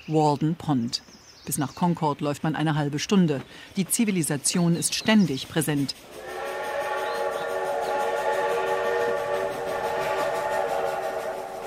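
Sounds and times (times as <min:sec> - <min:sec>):
speech: 0:00.1 - 0:06.4
steam train wheels rumbling: 0:04.0 - 0:11.6
steam train whistle: 0:06.0 - 0:11.6.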